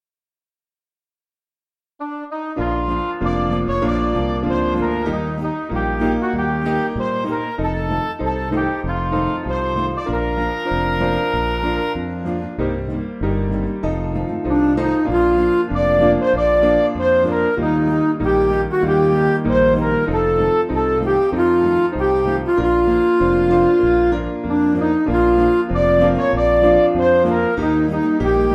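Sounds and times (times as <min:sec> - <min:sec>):
MIDI music: 0:02.0 - 0:28.5.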